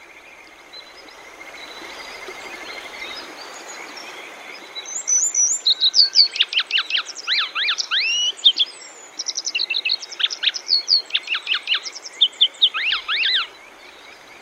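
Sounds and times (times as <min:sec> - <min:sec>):
steady low hiss: 0:00.0 - 0:14.4
grey wagtail calling on the Boso Peninsula in Chiba Prefecture Japan: 0:05.0 - 0:14.4.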